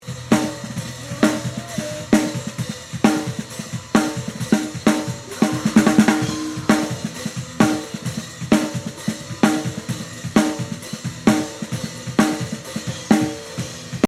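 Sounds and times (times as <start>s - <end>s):
snare drum with large gated reverb: 0.0s - 14.0s.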